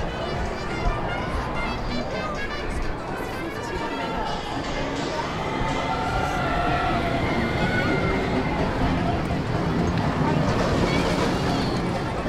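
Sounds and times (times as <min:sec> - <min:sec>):
crowd noise: 0:00.0 - 0:12.2
roller coaster riders screaming on a boardwalk: 0:05.0 - 0:12.2.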